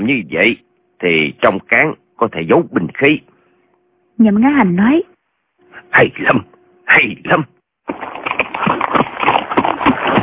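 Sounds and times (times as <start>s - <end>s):
speech: 0.0s - 3.3s, 4.2s - 5.1s, 5.9s - 8.0s
horse hooves clip-clopping: 7.9s - 10.2s.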